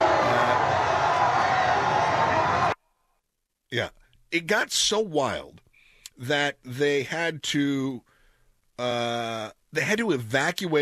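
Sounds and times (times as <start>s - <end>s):
large crowd letting out a collective ooh: 0.0s - 2.8s
speech: 3.7s - 5.6s, 6.2s - 8.1s, 8.8s - 10.8s.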